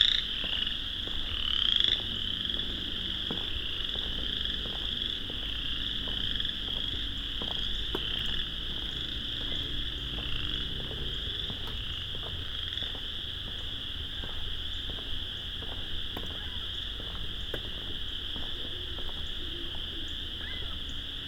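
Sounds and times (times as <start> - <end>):
faint low rumble: 0.0 - 21.1
vast chorus of frogs with high trilling calls: 0.0 - 21.2.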